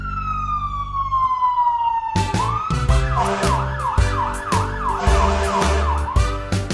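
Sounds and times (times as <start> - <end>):
fire truck siren wailing and yelping: 0.0 - 6.6.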